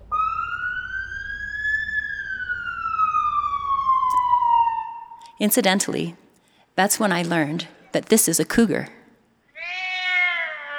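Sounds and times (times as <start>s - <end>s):
fire engine siren wailing: 0.0s - 6.0s
faint low rumble: 0.0s - 6.8s
speech: 5.4s - 6.2s, 6.8s - 9.0s.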